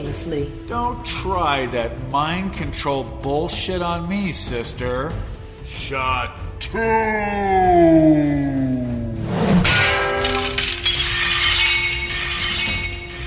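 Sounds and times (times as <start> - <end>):
speech: 0.1 - 8.8
katana blade shattering: 9.6 - 13.2
ringing, tinkling metallic fragments of a katana blade scattering: 9.7 - 13.2.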